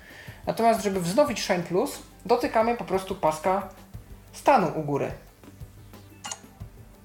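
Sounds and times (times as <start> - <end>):
speech: 0.5 - 3.8, 4.4 - 5.3
phone buzzing in short low pulses: 6.2 - 6.5.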